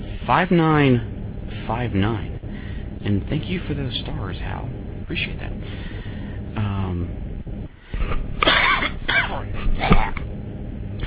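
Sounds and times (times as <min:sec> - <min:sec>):
speech: 0:00.3 - 0:01.1, 0:01.7 - 0:02.3, 0:03.0 - 0:05.8, 0:06.6 - 0:07.2, 0:09.8 - 0:10.2
throaty throat clearing: 0:08.4 - 0:10.2
harsh hacking cough: 0:08.4 - 0:10.3.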